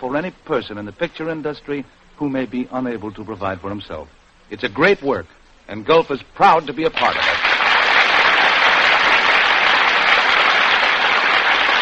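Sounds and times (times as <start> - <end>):
speech: 0.0 - 7.4
large studio audience applause: 7.0 - 11.8.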